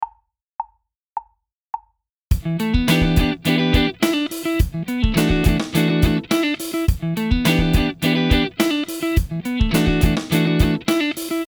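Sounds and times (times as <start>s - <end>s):
minor seventh chords: 2.4s - 11.4s.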